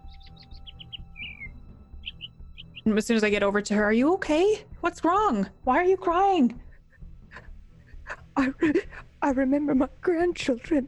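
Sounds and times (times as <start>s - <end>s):
small bird chirping: 0.0s - 3.0s
low rumble: 0.0s - 10.8s
speech: 2.8s - 6.6s, 8.4s - 10.8s.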